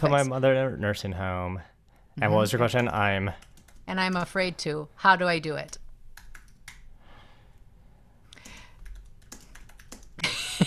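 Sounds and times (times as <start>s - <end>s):
speech: 0.0s - 5.8s
low hum: 0.0s - 10.6s
computer keyboard typing: 2.8s - 4.4s, 5.6s - 6.9s, 8.3s - 10.6s
laughter: 10.2s - 10.6s.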